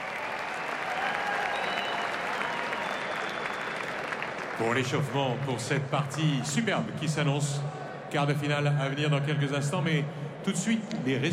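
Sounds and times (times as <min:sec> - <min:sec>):
large audience applauding loudly: 0:00.0 - 0:05.2
speech: 0:04.6 - 0:11.3.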